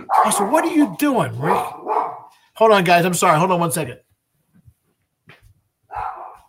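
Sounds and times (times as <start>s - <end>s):
dog barking: 0.0s - 2.4s, 3.2s - 3.5s, 5.9s - 6.4s
speech: 0.2s - 1.9s, 2.6s - 4.1s.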